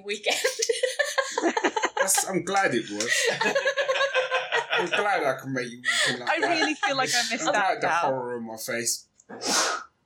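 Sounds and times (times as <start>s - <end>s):
speech: 0.0s - 0.7s, 2.3s - 3.8s, 4.8s - 9.6s
laughter: 0.3s - 7.9s
quick intake of breath: 9.3s - 9.9s
sneeze: 9.3s - 9.9s.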